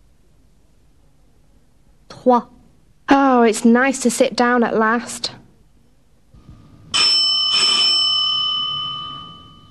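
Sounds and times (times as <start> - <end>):
speech: 2.2 - 2.6, 3.2 - 5.4
doorbell chiming: 7.0 - 9.6.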